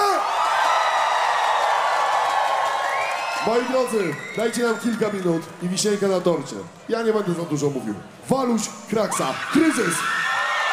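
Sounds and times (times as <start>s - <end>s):
concert crowd at a small stage cheering and whooping: 0.0s - 5.6s, 9.4s - 10.7s
speech: 3.4s - 10.3s.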